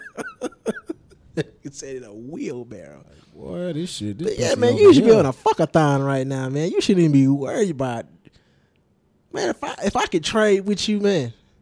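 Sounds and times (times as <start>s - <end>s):
short dry coughs: 0.0s - 1.6s
speech: 1.4s - 8.2s, 9.3s - 11.4s.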